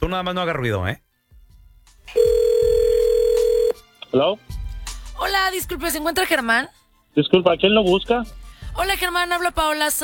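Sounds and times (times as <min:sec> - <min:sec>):
speech: 0:00.0 - 0:01.1, 0:02.1 - 0:02.4, 0:04.1 - 0:04.5, 0:05.2 - 0:10.0
loud steady telephone tone of a dialed call: 0:02.1 - 0:03.8.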